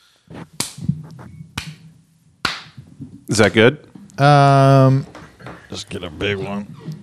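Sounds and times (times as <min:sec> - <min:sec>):
hand slapping skin: 0:00.4 - 0:02.9
speech: 0:03.3 - 0:05.1, 0:05.7 - 0:07.0.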